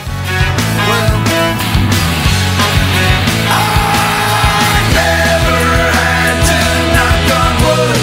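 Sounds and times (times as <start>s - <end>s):
loud dense rock music: 0.0s - 8.0s
singer's sustained scream: 3.1s - 8.0s.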